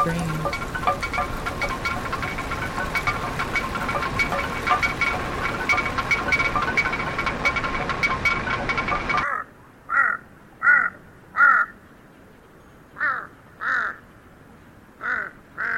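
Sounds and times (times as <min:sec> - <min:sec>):
speech: 0:00.0 - 0:00.6
rustling noise: 0:00.0 - 0:09.2
huge Tibetan crow calling with harsh hoarse caws: 0:09.2 - 0:11.8, 0:13.0 - 0:14.0, 0:15.0 - 0:15.7.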